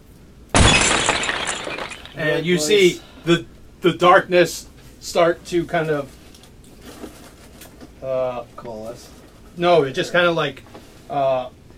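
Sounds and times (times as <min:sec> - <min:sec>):
energy field shattering like glass struck by a creature's arms: 0:00.6 - 0:02.4
speech: 0:01.7 - 0:06.2, 0:08.0 - 0:11.6.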